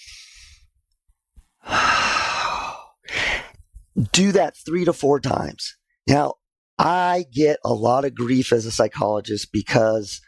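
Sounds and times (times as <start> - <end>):
deep diaphragmatic breathing: 0.0 - 0.7, 1.5 - 3.7
speech: 4.0 - 10.2.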